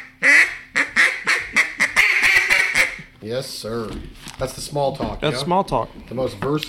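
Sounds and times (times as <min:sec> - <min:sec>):
duck call blowing mallard-style quacks: 0:00.0 - 0:03.1
speech: 0:03.3 - 0:06.6.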